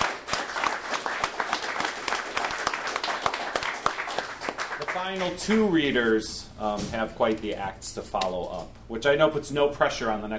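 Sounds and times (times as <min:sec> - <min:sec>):
room full of people applauding: 0:00.0 - 0:05.8
speech: 0:05.0 - 0:10.3.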